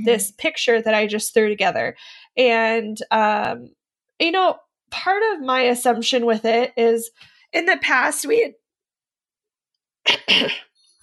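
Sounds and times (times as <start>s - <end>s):
speech: 0.0s - 8.6s, 10.1s - 10.7s
person with a cold coughing: 10.1s - 10.8s.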